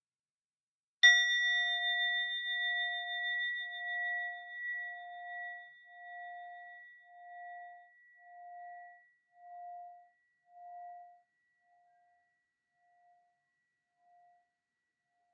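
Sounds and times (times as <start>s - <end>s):
meditation bell struck and ringing: 1.0s - 11.3s.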